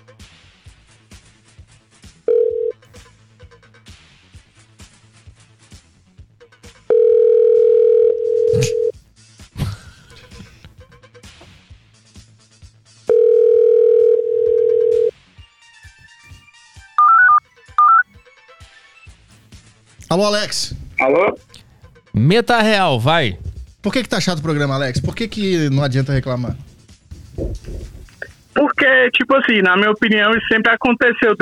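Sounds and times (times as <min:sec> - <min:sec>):
ringback tone of a phone call placed over Bluetooth: 0:02.3 - 0:02.8, 0:06.9 - 0:08.9, 0:13.1 - 0:15.1, 0:17.0 - 0:18.0
speech: 0:20.2 - 0:21.5, 0:22.2 - 0:26.6, 0:29.0 - 0:31.4.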